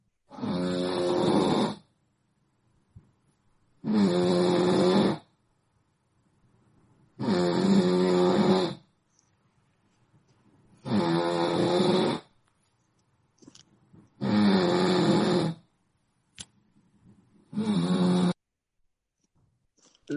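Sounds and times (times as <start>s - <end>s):
sleeping person snoring: 0.3s - 1.9s, 3.8s - 5.3s, 7.2s - 8.9s, 10.8s - 12.3s, 14.2s - 15.6s, 17.5s - 18.4s.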